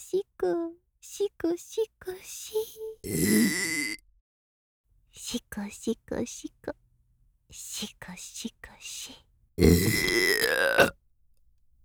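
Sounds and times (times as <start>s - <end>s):
speech: 0.1s - 3.9s, 5.2s - 6.8s, 7.5s - 11.0s
long, deep, rough burp: 3.1s - 4.0s, 9.6s - 11.0s.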